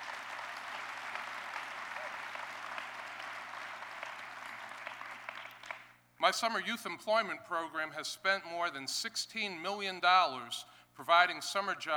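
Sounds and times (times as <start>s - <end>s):
audience clapping in a round of applause: 0.0s - 6.0s
speech: 6.2s - 11.9s.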